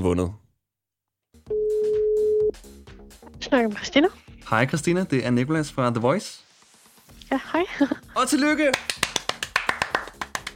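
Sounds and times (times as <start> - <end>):
speech: 0.0 - 0.4, 3.5 - 6.4, 7.3 - 9.0
telephone ringback tone of a call to a radio contest winner: 1.5 - 2.5
laughter: 7.3 - 8.3.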